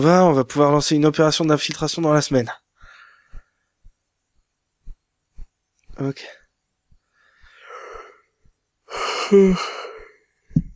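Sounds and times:
speech: 0:00.0 - 0:02.6, 0:06.0 - 0:06.4, 0:08.9 - 0:09.8
person yawning: 0:08.9 - 0:10.1.

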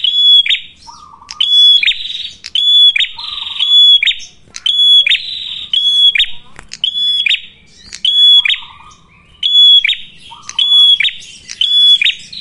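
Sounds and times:
red-headed prenjak prinia singing strident whistled notes with buzzy sounds: 0:00.0 - 0:12.4
softer lower chirping in the background: 0:00.0 - 0:12.4
sharp clicks: 0:01.2 - 0:02.7, 0:04.2 - 0:04.8, 0:06.2 - 0:08.6, 0:10.4 - 0:12.2.

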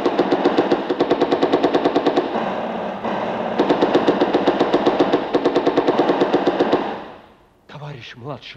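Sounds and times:
machine gun firing at advancing enemy infantry in a wartime battle: 0:00.0 - 0:07.4
dense rumbling noise: 0:01.8 - 0:07.4
speech: 0:08.4 - 0:08.5.

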